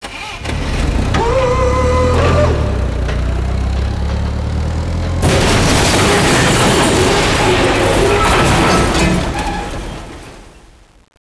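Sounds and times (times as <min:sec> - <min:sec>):
forklift: 0:00.0 - 0:10.3.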